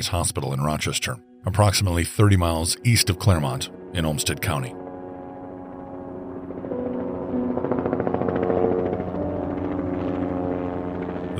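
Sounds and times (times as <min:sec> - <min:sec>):
speech: 0:00.0 - 0:04.8
emergency medical helicopter droning engine whine: 0:02.2 - 0:11.3
emergency medical helicopter rotor thumping in flight: 0:04.8 - 0:11.3.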